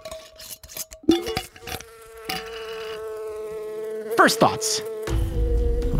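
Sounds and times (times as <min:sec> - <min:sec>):
insect buzzing inside a sealed jar: 0:00.3 - 0:05.9
insect tapping and knocking against glass jar walls: 0:01.1 - 0:03.1
speech: 0:04.2 - 0:05.0.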